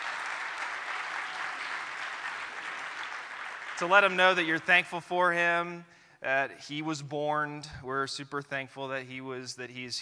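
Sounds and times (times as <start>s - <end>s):
church congregation clapping hands: 0.0s - 4.8s
speech: 3.8s - 10.0s.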